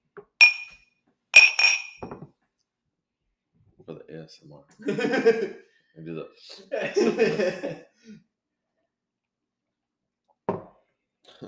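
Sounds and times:
glasses clinking together in a toast: 0.4s - 0.8s, 1.4s - 2.1s
speech: 3.9s - 8.3s
laughter: 4.8s - 5.6s, 6.6s - 7.9s.

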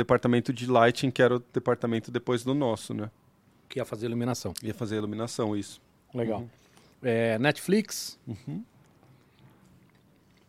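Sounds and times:
speech: 0.0s - 8.7s
person chewing food: 8.8s - 10.4s.

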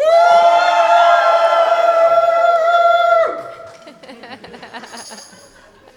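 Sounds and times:
crowd shouting together on a count: 0.0s - 3.9s
laughter: 3.1s - 5.9s.

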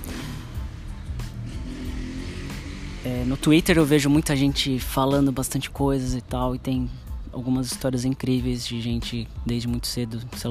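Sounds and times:
motorcycle engine roaring past: 0.0s - 4.6s
road noise: 0.0s - 10.5s
speech: 3.0s - 10.5s.

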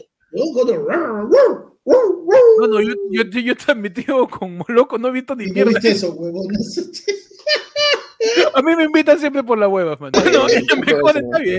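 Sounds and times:
person imitating a dog barking during an acceptance speech: 0.4s - 3.2s
speech: 0.4s - 7.6s, 8.2s - 11.5s
laughter: 6.6s - 8.6s, 10.2s - 11.5s.

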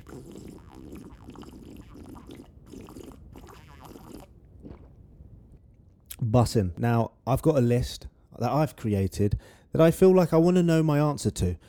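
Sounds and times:
gurgling swallows: 0.0s - 5.1s
sipping coffee with wet slurping: 0.0s - 5.1s
soft mouth noises: 0.0s - 5.3s
speech: 6.3s - 11.6s.

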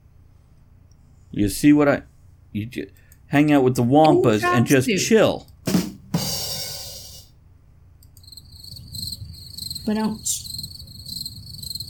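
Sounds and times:
speech: 1.3s - 5.5s, 9.9s - 10.5s
chorus of crickets chirping: 8.0s - 11.8s.

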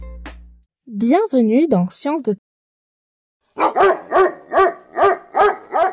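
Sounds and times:
speech: 1.0s - 2.4s
domestic dog barking: 3.6s - 5.9s.

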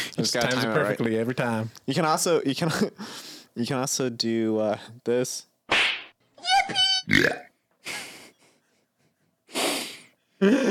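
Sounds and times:
speech: 0.2s - 5.5s, 6.7s - 7.4s, 10.4s - 10.6s
squeaky high-pitched sped-up vocal blip: 6.4s - 7.4s.

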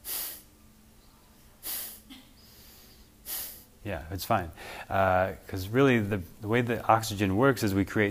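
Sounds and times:
airy breaths in a passive-inhale breathing demonstration: 0.0s - 0.5s, 1.6s - 3.8s, 4.5s - 5.0s
faint brief puff of breath: 1.6s - 2.2s, 3.3s - 3.6s
speech: 3.8s - 8.0s.

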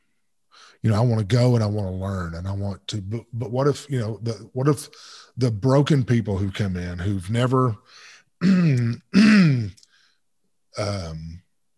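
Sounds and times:
speech: 0.7s - 9.8s, 10.8s - 11.4s
throat clearing into a microphone: 8.4s - 9.9s.

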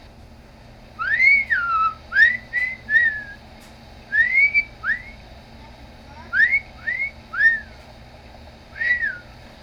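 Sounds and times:
low hum and hiss of an old cassette recording: 0.0s - 9.6s
man whistling into a cassette recorder: 1.0s - 3.4s, 4.1s - 5.2s, 6.4s - 7.8s, 8.8s - 9.3s.

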